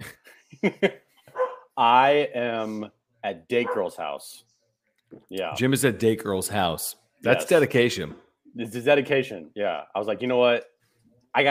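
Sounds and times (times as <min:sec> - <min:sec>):
speech: 0:00.6 - 0:01.0, 0:01.8 - 0:04.5, 0:05.1 - 0:10.7, 0:11.3 - 0:11.5
dog barking: 0:01.3 - 0:01.7, 0:03.6 - 0:04.0
dog letting out a higher-pitched whine-like yelp: 0:01.3 - 0:01.7, 0:03.6 - 0:03.9.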